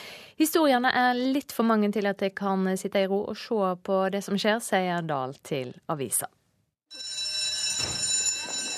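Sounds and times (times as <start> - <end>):
speech: 0.4 - 7.1
electric school bell ringing with metallic clang: 6.9 - 8.7.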